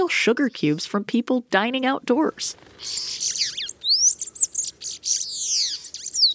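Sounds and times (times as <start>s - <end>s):
speech: 0.1s - 3.6s
bananaquit singing: 2.3s - 6.3s.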